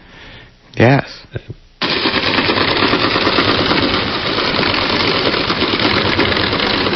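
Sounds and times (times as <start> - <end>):
speech: 0.8 - 1.1
cargo ship underwater engine drone: 1.8 - 6.9.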